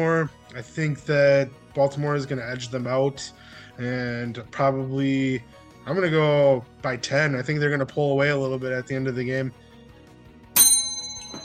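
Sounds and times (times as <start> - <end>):
speech: 0.0 - 9.6
bell strike in an office: 10.6 - 11.4.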